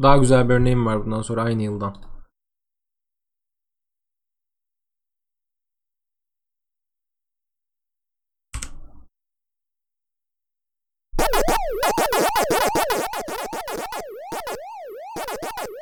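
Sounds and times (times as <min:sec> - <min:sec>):
speech: 0:00.0 - 0:02.1
8-bit chiptune sound effects from a 1980 arcade game: 0:11.2 - 0:15.8.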